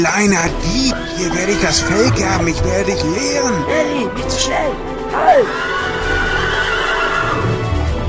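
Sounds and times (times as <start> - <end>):
speech: 0.0 - 6.3
horse whinnying: 0.6 - 2.7, 5.0 - 7.9.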